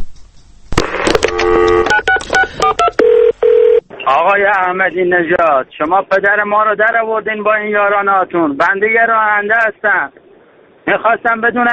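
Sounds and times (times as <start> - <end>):
telephone keypad dialing tones: 1.2 - 3.8
speech: 4.1 - 10.2, 10.9 - 11.7.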